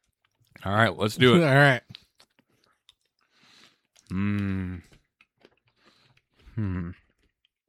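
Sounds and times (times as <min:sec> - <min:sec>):
chewing peanut butter cinnamon roll M&Ms: 0:00.0 - 0:00.8, 0:01.7 - 0:07.6
speech: 0:00.6 - 0:02.0, 0:04.1 - 0:04.9, 0:06.6 - 0:07.0
person humming mm while eating: 0:04.1 - 0:04.9, 0:06.5 - 0:07.0.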